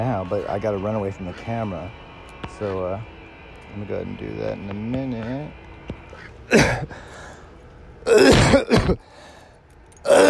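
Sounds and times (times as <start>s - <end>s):
speech: 0.0s - 5.6s, 6.2s - 7.2s, 8.0s - 9.2s, 10.0s - 10.2s
person clearing their throat: 6.5s - 6.9s, 8.1s - 9.0s
person coughing in front of a camera: 6.5s - 7.0s, 8.1s - 9.0s, 10.1s - 10.2s.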